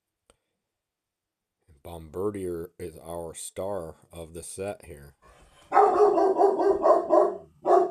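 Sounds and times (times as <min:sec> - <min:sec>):
speech: 0:01.8 - 0:05.3
dogs barking: 0:05.7 - 0:07.8.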